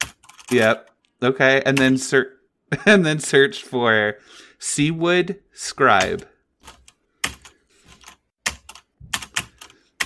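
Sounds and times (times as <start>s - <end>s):
typing on a computer keyboard: 0.0s - 0.9s, 6.0s - 10.0s
speech: 0.5s - 6.8s.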